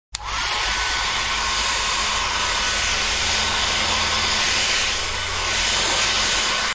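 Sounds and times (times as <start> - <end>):
household electric hair dryer running: 0.2 - 6.7.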